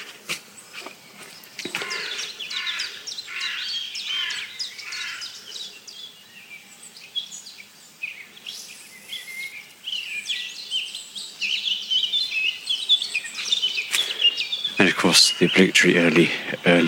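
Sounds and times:
several blackcaps singing in a dawn chorus: 0.0s - 16.8s
speech: 15.4s - 16.8s.

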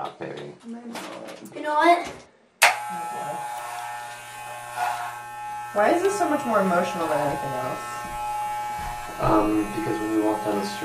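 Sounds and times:
speech: 0.2s - 2.3s, 5.8s - 7.9s, 9.2s - 10.8s
electric shaver buzzing while shaving head: 2.6s - 10.8s.

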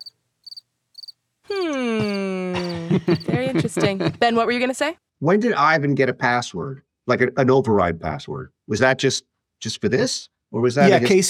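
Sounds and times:
cricket chirps: 0.0s - 3.3s
laughter: 1.5s - 4.6s, 10.8s - 11.2s
speech: 2.9s - 11.2s.

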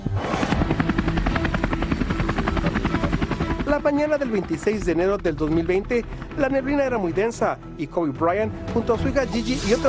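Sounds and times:
helicopter rotor chopping: 0.2s - 7.6s
speech: 3.8s - 9.8s.

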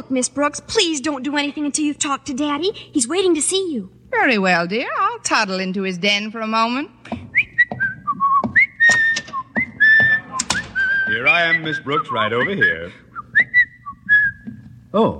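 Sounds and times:
speech: 0.0s - 7.2s, 11.2s - 13.0s, 14.9s - 15.1s
person whistling a short lilting tune: 7.3s - 14.6s.

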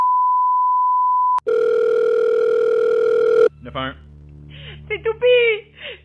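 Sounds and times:
steady electronic telephone tone: 0.0s - 3.5s
continuous telephone ringing tone: 1.4s - 3.5s
speech: 3.7s - 4.1s, 4.9s - 6.0s.

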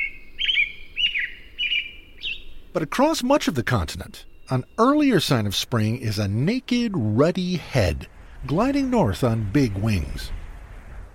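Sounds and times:
American robin singing whistled phrases: 0.0s - 2.6s
speech: 2.8s - 10.4s.

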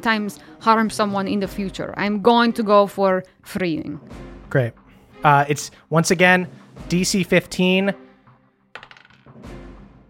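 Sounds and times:
speech: 0.0s - 8.0s
dice rattling onto a hard surface during a tabletop role-playing game: 8.8s - 9.4s.

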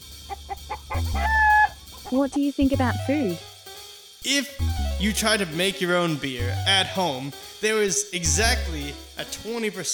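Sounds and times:
chicken clucking: 0.2s - 2.1s
speech: 2.1s - 3.5s, 4.2s - 9.9s.

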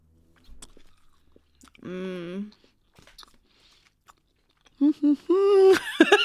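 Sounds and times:
chewing a chewy peanut dark chocolate candy bar: 0.4s - 5.3s
laughter: 5.3s - 6.2s.

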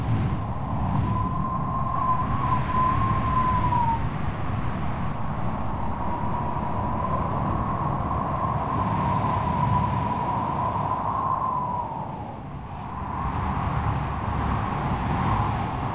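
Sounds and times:
strong stormy wind roaring: 0.0s - 15.9s
thin whistling tone: 0.5s - 4.1s.

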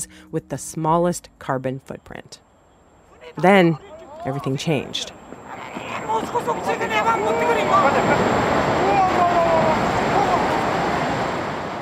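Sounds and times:
speech: 0.0s - 2.4s, 3.3s - 9.8s
laughter: 3.2s - 10.8s
crashing surging tsunami water in Japan 2011 after magnitude 9.1 earthquake: 5.0s - 11.8s.

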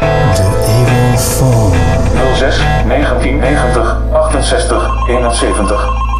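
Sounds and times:
punchy distorted synth stabs in a podcast segment jingle: 0.2s - 4.6s
speech: 2.4s - 6.0s.

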